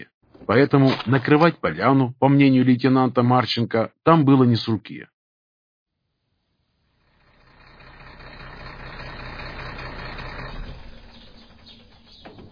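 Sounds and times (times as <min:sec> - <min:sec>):
speech: 0:00.5 - 0:05.1
truck engine rumbling while driving through gates and stopping: 0:07.0 - 0:12.5.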